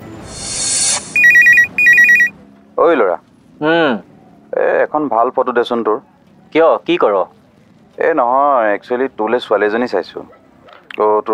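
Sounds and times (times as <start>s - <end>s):
phone ringtone for an incoming call: 1.2s - 2.4s
speech: 2.8s - 7.4s, 8.0s - 10.4s, 11.0s - 11.3s.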